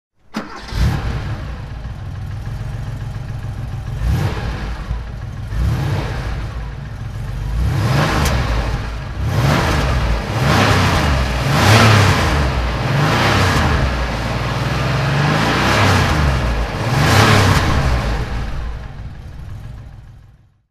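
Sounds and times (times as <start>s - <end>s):
Porsche 911 SC 3.0 Targa engine throttle: 0.3s - 20.4s.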